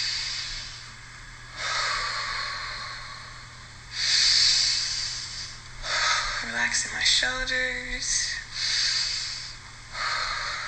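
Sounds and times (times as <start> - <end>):
slow breathing with sniffing nasal inhales and airy mouth exhales: 0.0 - 6.6, 8.4 - 10.6
speech: 6.5 - 8.8.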